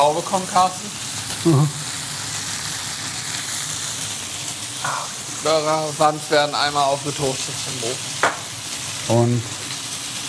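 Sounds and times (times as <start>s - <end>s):
speech: 0.0s - 1.8s, 5.4s - 8.1s, 9.1s - 9.6s
onions frying in a pan with sausage: 0.0s - 10.2s.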